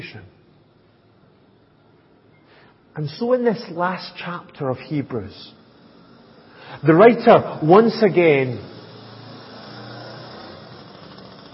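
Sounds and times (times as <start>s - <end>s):
speech: 0.0s - 0.4s, 3.0s - 5.6s, 6.7s - 8.7s
small lorry engine roaring as it passes: 5.4s - 11.5s.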